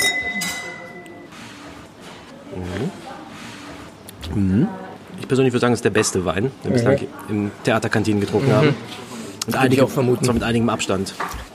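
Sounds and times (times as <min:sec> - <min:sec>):
wine glasses clinking in a toast: 0:00.0 - 0:01.2
murmur of voices: 0:00.0 - 0:11.5
speech: 0:02.5 - 0:03.0, 0:04.3 - 0:11.5.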